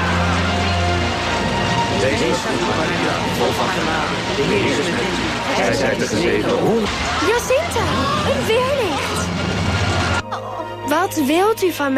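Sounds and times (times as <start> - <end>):
pouring rain: 0.0 - 10.2
crowd of about seventy thousand people murmuring in the downpour: 0.0 - 10.8
speech: 2.0 - 9.6, 10.9 - 11.9.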